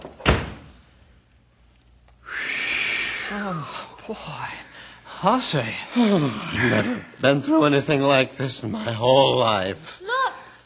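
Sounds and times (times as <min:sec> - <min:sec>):
door slamming shut: 0:00.0 - 0:00.7
steady airy whistling hiss: 0:02.2 - 0:03.8
speech: 0:03.3 - 0:10.1.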